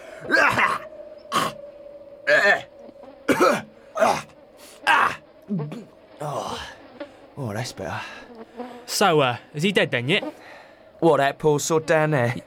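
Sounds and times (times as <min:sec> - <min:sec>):
strained groaning: 0:00.0 - 0:12.4
speech: 0:02.3 - 0:02.7, 0:07.6 - 0:08.3, 0:08.9 - 0:10.4, 0:11.0 - 0:12.4
person coughing to dislodge antelope fur stuck in the throat: 0:03.3 - 0:04.2.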